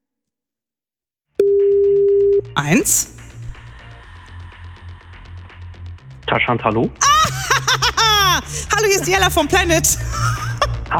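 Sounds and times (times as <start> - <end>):
telephone ringing tone while calling: 1.4 - 2.5
speech: 2.6 - 3.2, 6.3 - 7.2, 8.8 - 10.9
laughter: 7.0 - 10.9.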